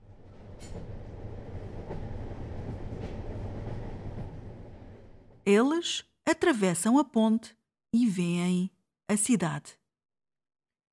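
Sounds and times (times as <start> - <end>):
train to Lisbon rumbling along rails: 0.0 - 5.5
speech: 5.5 - 9.8.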